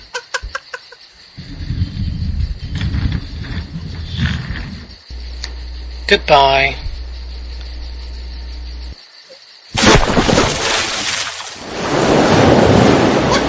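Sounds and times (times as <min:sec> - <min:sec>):
laughter: 0:00.0 - 0:01.0, 0:13.3 - 0:13.4
low hum: 0:01.4 - 0:09.0
speech: 0:06.1 - 0:06.8
sudden loud splash of water: 0:09.8 - 0:13.4.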